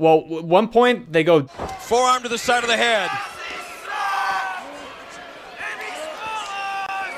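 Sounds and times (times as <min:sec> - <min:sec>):
speech: 0:00.0 - 0:03.3
crowd of drunk wrestling fans yelling and chanting at wrestling event: 0:01.5 - 0:07.1.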